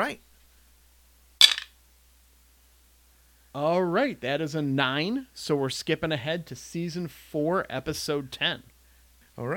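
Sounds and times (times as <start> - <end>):
speech: 0.0 - 0.3, 3.6 - 8.7, 9.4 - 9.5
dice clattering on a hard surface: 1.4 - 1.8.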